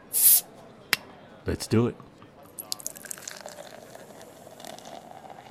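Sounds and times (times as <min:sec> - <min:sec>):
escaping gas hissing from opened bottle: 0:00.0 - 0:00.4
speech: 0:01.5 - 0:02.1.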